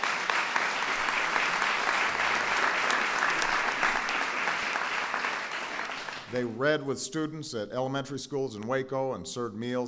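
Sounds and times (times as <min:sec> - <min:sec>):
crowd applauding: 0:00.0 - 0:06.5
speech: 0:06.3 - 0:09.8.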